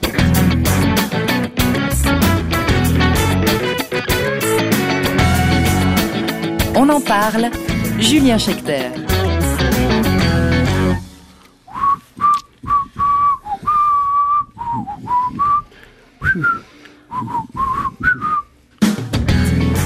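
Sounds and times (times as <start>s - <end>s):
music: 0.0s - 11.6s, 18.6s - 19.8s
speech: 6.8s - 9.1s
person whistling a short melody: 11.7s - 18.5s.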